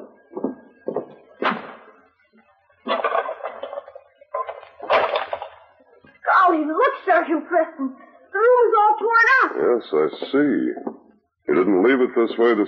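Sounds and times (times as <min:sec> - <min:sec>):
clattering handling noises of lighting an oil lamp: 0:02.9 - 0:05.7
speech: 0:06.6 - 0:08.1, 0:08.8 - 0:10.9, 0:11.5 - 0:12.6.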